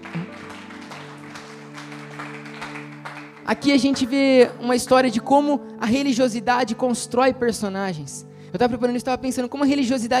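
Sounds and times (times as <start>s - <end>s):
audience applauding: 0.0s - 4.7s
speech: 3.5s - 10.1s.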